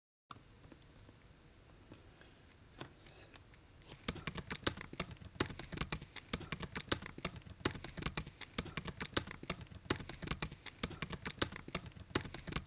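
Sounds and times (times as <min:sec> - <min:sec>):
fingers typing on a computer keyboard: 0:03.9 - 0:12.6.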